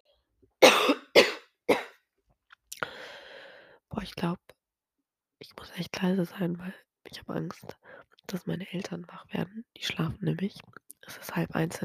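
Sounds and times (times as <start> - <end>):
person coughing harshly: 0.6 - 2.0
speech: 4.0 - 4.6, 5.4 - 11.8.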